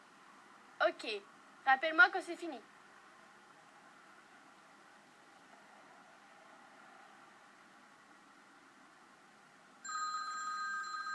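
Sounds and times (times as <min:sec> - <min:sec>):
speech: 0:00.9 - 0:02.7
telephone ringing with electronic tone: 0:09.8 - 0:11.1.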